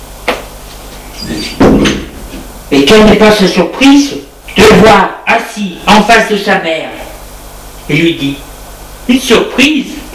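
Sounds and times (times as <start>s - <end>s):
knocking on a door: 1.6s - 2.1s
speech: 2.7s - 7.0s, 7.9s - 8.5s, 9.1s - 10.1s.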